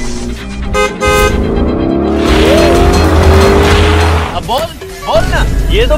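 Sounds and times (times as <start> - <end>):
two-seater sports car engine roaring while accelerating hard: 0.0 - 4.5
two-seater sports car tires squealing: 1.0 - 4.6.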